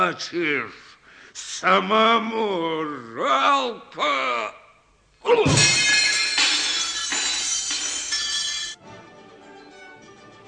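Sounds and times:
speech: 0.1 - 4.6, 5.2 - 6.0
breaking glass spilling: 5.5 - 8.8
small mirror shattering: 5.5 - 8.8.

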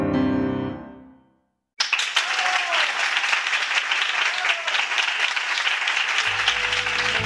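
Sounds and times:
audience applause after a concert piece: 1.8 - 7.2.

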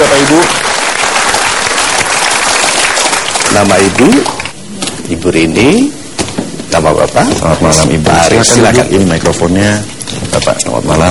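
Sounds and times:
audience applause welcoming a couple to the stage: 0.0 - 4.6
speech: 3.6 - 4.4, 5.1 - 6.0, 6.7 - 11.0.

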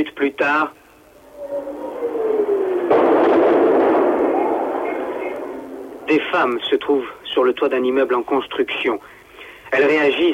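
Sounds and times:
speech: 0.0 - 0.8, 6.1 - 10.3
artillery shell whistling overhead: 0.9 - 6.2
heavy explosion during shelling of rooftops in Phnom Penh: 1.7 - 6.6.

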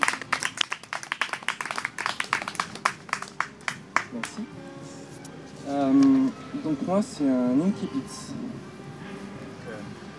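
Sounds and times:
audience applauding at a live reading event: 0.0 - 4.4
speech: 4.1 - 4.6, 6.6 - 8.8.

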